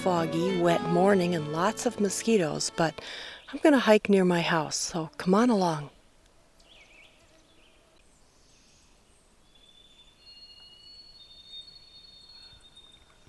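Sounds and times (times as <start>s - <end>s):
speech: 0.0s - 6.0s
two White-throated Sparrows singing overlapping whistled songs near a house in Cook County, Minnesota: 6.6s - 13.2s.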